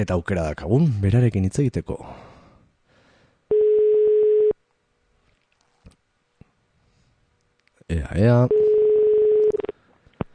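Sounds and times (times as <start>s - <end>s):
speech: 0.0s - 2.3s, 7.9s - 8.6s
telephone ringing tone while placing a call: 3.5s - 4.6s, 8.5s - 9.7s.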